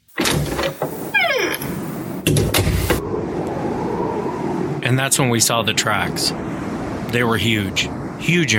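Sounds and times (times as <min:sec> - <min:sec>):
cabin door opening with hinge creak: 0:00.0 - 0:02.9
steady wind-like rushing noise: 0:01.7 - 0:08.5
speech: 0:05.0 - 0:08.5.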